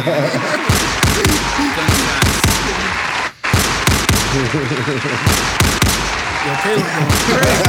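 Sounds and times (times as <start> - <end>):
speech: 0.0 - 0.6, 4.4 - 7.6
laughter: 0.0 - 3.3, 4.3 - 5.3, 6.4 - 7.6
gunshot sound effects: 0.5 - 7.6.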